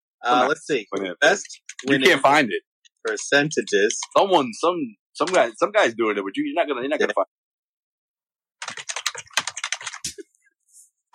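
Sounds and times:
speech: 0.2s - 7.4s
fast typing on a computer keyboard: 1.4s - 2.0s, 5.2s - 5.5s, 8.6s - 10.2s.

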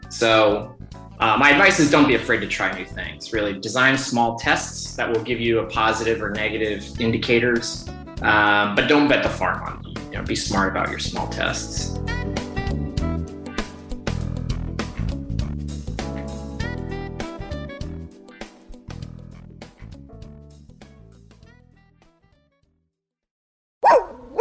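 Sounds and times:
upbeat instrumental music: 0.0s - 22.3s
speech: 0.1s - 12.4s
single loud sharp dog bark: 23.8s - 24.3s.

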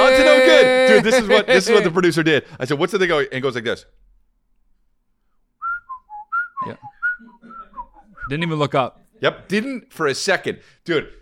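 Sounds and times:
speech: 0.9s - 4.0s, 6.6s - 7.0s, 8.3s - 11.2s
person whistling a single short clear steady note: 5.6s - 8.3s.

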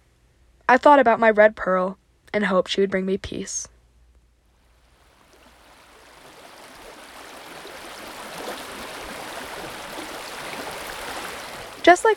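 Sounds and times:
speech: 0.7s - 3.8s, 11.9s - 12.1s
rushing river water: 4.9s - 12.1s.

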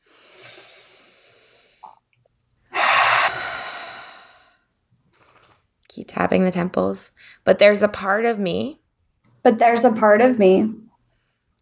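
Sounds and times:
deep breath during a tapping exercise: 0.0s - 2.0s, 2.7s - 4.7s
speech: 6.0s - 8.8s, 9.4s - 10.8s.

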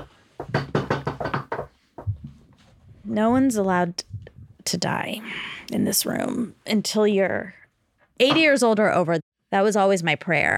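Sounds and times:
knocking on wood: 0.0s - 2.4s
speech: 3.1s - 4.1s, 4.7s - 7.6s, 8.2s - 10.5s.

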